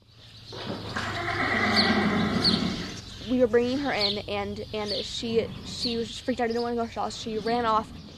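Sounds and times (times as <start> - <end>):
horse whinnying at a stable: 0.9 - 3.0
speech: 3.4 - 8.1.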